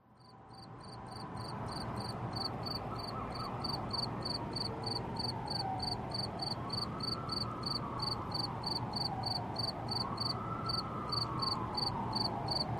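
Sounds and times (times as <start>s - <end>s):
cricket chirping: 0.2s - 12.7s.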